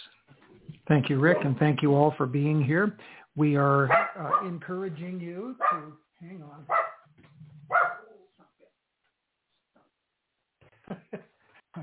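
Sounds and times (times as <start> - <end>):
speech: 0.9 - 6.9
dog barking at something outside a window: 3.9 - 4.5, 5.6 - 6.0, 6.6 - 7.1, 7.7 - 8.3.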